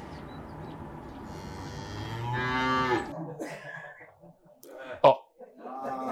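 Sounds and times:
cow mooing: 1.3 - 3.1
laughter: 3.1 - 6.0.

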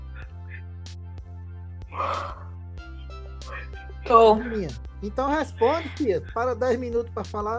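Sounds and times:
person yawning from sleepiness: 1.9 - 2.5
speech: 4.1 - 7.5.

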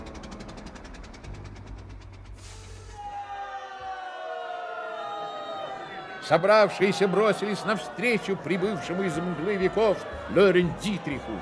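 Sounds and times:
old car engine chugging and sputtering out of petrol: 0.0 - 2.8
murmuring voices: 5.4 - 11.4
speech: 6.3 - 11.4.

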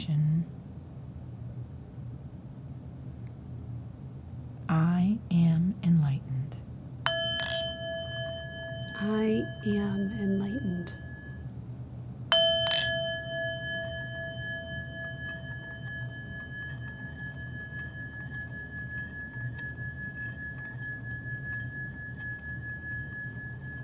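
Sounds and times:
low soft hum: 0.0 - 23.8
speech: 4.7 - 6.4, 9.0 - 11.0
singing bowl struck and ringing: 7.1 - 11.5, 12.3 - 23.8.

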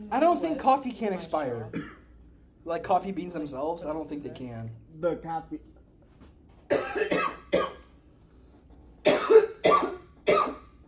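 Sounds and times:
speech: 0.1 - 1.9, 2.6 - 5.7
harsh coughing: 1.7 - 2.2, 6.7 - 7.9, 9.0 - 10.8.

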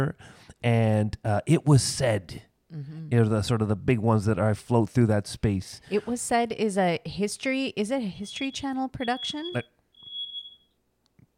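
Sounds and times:
speech: 0.0 - 9.8
fire alarm high-pitched beep: 8.2 - 10.8.

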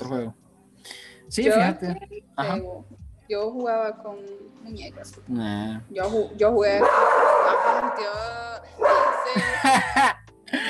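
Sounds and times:
speech: 1.3 - 10.1
dog barking: 6.8 - 8.2, 8.8 - 9.4
laughter: 9.2 - 10.6.

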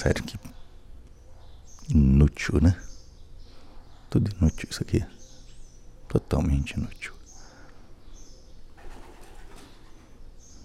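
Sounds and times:
speech: 0.0 - 0.5, 1.9 - 2.9, 4.1 - 5.2, 6.1 - 7.2
flock of pigeons cooing softly: 0.0 - 10.6
higher bird calls: 0.3 - 10.6
pigeon wings flapping: 8.8 - 10.2.

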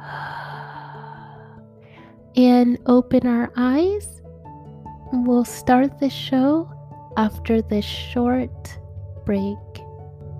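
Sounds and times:
deep breath in and out during a guided relaxation: 0.0 - 2.3
speech: 2.4 - 4.2, 5.1 - 9.6.

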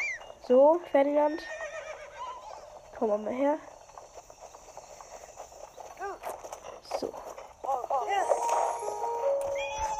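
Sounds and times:
horse hooves clip-clopping: 0.0 - 9.9
speech: 0.5 - 1.6, 3.0 - 3.7.

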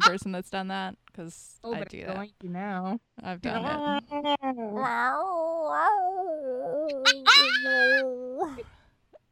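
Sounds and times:
speech: 0.1 - 8.7
person imitating cat in heat yowling: 3.6 - 8.6.

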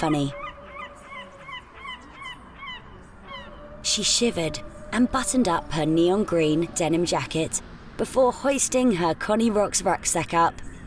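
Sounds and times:
speech: 0.0 - 0.4, 4.0 - 10.8
seagulls squawking: 0.0 - 3.6.

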